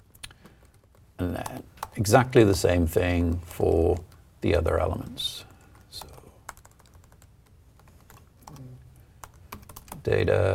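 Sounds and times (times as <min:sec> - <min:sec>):
typing on a computer keyboard: 0:00.1 - 0:02.0, 0:05.5 - 0:08.6, 0:09.2 - 0:10.0
speech: 0:01.2 - 0:06.1, 0:10.0 - 0:10.5.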